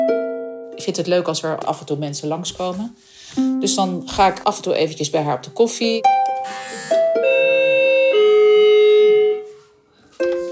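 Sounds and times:
speech: 0:00.8 - 0:07.0
loud electronic doorbell chiming a short melody: 0:06.4 - 0:09.6.

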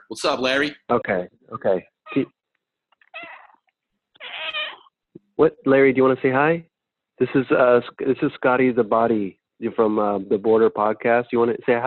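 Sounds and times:
speech: 0:00.1 - 0:02.4, 0:05.4 - 0:11.8
cat meowing: 0:02.1 - 0:02.4, 0:03.0 - 0:04.9.

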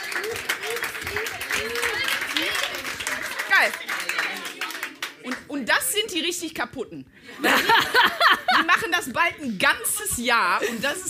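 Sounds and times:
live audience clapping: 0:00.0 - 0:05.5
speech: 0:03.6 - 0:03.8, 0:06.1 - 0:11.0
laughter: 0:07.3 - 0:09.0.

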